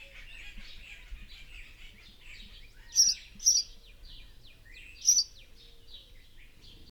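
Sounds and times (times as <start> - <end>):
house sparrow Passer domesticus chirps: 0.0 - 6.9
soft background chatter: 0.0 - 6.9.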